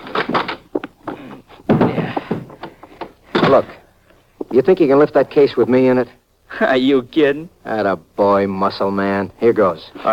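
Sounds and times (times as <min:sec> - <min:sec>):
door being opened: 0:01.7 - 0:03.7
heavy thump: 0:01.7 - 0:03.8
speech: 0:03.5 - 0:03.8, 0:04.5 - 0:10.1.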